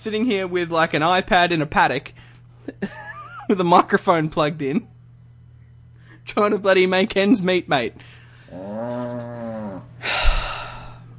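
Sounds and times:
speech: 0.0 - 4.9, 6.3 - 9.3
cow mooing: 8.5 - 10.0
breathy huff: 10.0 - 11.1.

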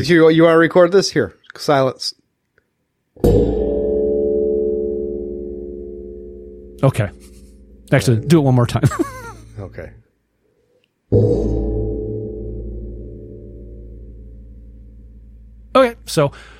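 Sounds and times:
speech: 0.0 - 2.2, 3.2 - 3.7, 6.8 - 7.3, 7.9 - 10.0, 11.1 - 11.6, 16.1 - 16.5
gong strike ringing with a shimmering hum: 3.2 - 8.9, 11.1 - 16.5
laughter: 8.7 - 9.6.

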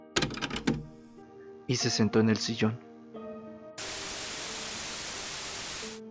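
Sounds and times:
speech: 1.7 - 2.9
TV video static hissing as a videotape starts in a VCR: 3.8 - 6.0.

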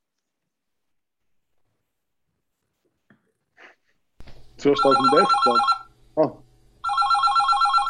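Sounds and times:
telephone ringing with a warbling electronic trill: 4.6 - 5.9, 6.8 - 7.8
speech: 4.6 - 6.4.

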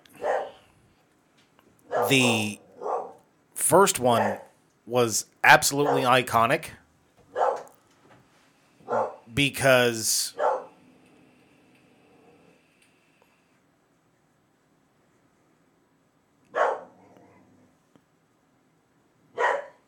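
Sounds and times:
dog barking: 0.2 - 0.6, 1.9 - 3.2, 5.8 - 6.1, 7.3 - 7.7, 8.9 - 9.3, 10.3 - 10.7, 16.5 - 17.1, 19.4 - 19.8
speech: 2.0 - 2.6, 3.7 - 6.8, 9.4 - 10.4.

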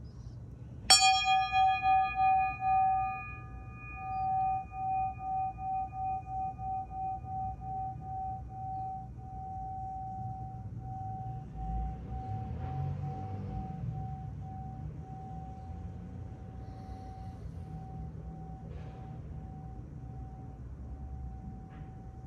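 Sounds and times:
low hum: 0.0 - 22.2
small bell ringing: 0.9 - 18.7.

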